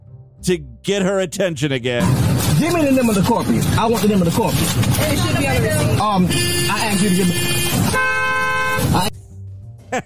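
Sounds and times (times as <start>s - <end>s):
speech: 0.4s - 8.0s
car horns honking at a drive-through: 5.1s - 9.1s.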